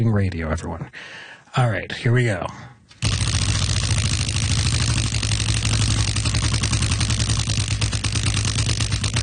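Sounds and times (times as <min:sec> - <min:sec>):
speech: 0:00.0 - 0:02.8
low hum: 0:03.0 - 0:09.2
prize wheel spinning after a hard push: 0:03.0 - 0:09.2.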